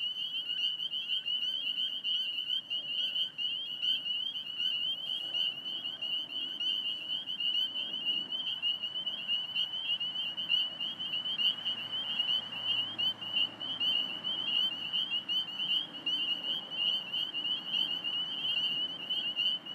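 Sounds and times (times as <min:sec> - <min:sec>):
spring peepers chorus calling in Alexandria VA: 0:00.0 - 0:19.7
traffic noise: 0:04.1 - 0:19.7.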